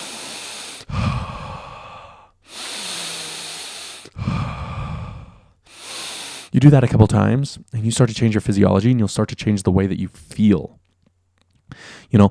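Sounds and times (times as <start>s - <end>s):
deep powerful breathing: 0.0s - 6.6s, 11.7s - 12.1s
speech: 6.6s - 10.8s, 11.7s - 12.2s.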